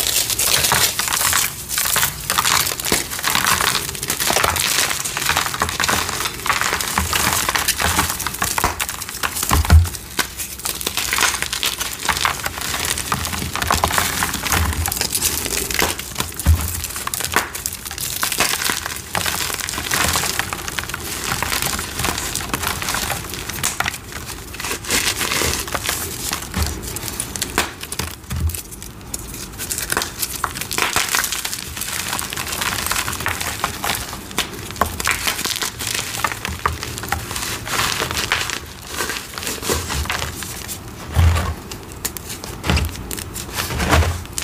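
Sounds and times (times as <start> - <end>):
dyed gym chalk and cornstarch crumbling: 0.0 - 44.4.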